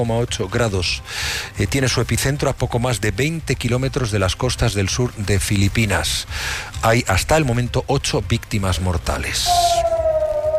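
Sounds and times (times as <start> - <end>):
speech: 0.0 - 9.9
air raid siren wailing at dawn in Israel after a missile interception: 9.5 - 10.5.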